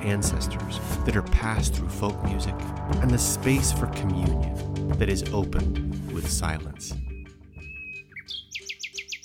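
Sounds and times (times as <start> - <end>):
speech: 0.0 - 7.1
nightingale singing: 6.9 - 9.2.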